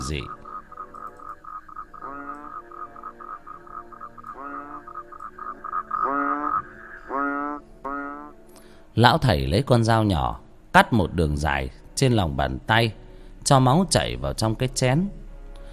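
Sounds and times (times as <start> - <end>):
frogs croaking at night: 0.0 - 8.7
speech: 0.1 - 0.4, 9.0 - 15.2.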